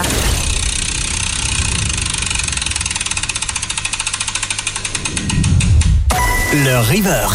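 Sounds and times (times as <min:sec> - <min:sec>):
game wheel spinning on a radio show: 0:00.6 - 0:06.0
speech: 0:06.5 - 0:07.3.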